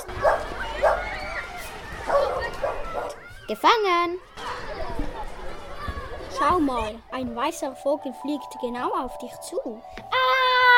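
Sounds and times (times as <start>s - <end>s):
dog barking on a schoolyard playground: 0.0s - 1.0s, 2.1s - 3.2s
speech: 3.5s - 4.5s, 6.4s - 10.1s.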